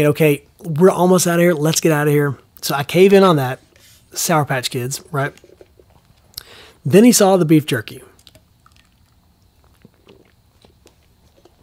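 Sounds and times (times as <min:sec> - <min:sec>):
speech: 0:00.0 - 0:05.4, 0:06.8 - 0:08.1
sips of coffee: 0:03.5 - 0:07.2, 0:07.8 - 0:11.6
small mouth clicks: 0:05.0 - 0:06.8, 0:08.1 - 0:11.6.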